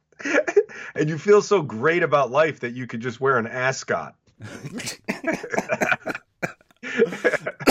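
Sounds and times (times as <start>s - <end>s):
speech: 1.0s - 6.0s
breathy laughter: 4.4s - 7.6s
spluttering coughs: 4.4s - 7.6s.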